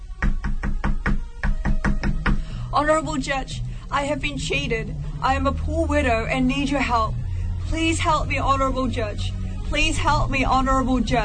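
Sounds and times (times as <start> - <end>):
woman knocking on a judge's wooden door: 0.2 - 2.5
speech: 2.8 - 11.2.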